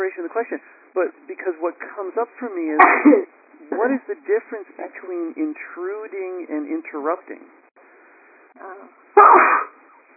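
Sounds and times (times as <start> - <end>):
speech: 0.4 - 7.6, 8.6 - 9.7
person sneezing: 2.8 - 3.2, 9.2 - 9.8.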